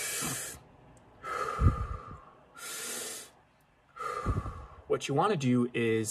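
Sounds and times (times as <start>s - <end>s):
deep breathing in from the stomach and exhaling: 0.0s - 0.6s, 1.2s - 4.9s
speech: 5.0s - 6.0s.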